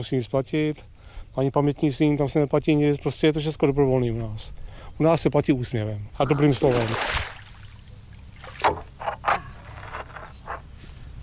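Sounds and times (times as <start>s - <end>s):
speech: 0.0s - 7.3s
low steady rumble of a small ferry boat: 0.0s - 11.2s
water lapping and splashing at a small ferry boat crossing a river: 6.2s - 9.0s.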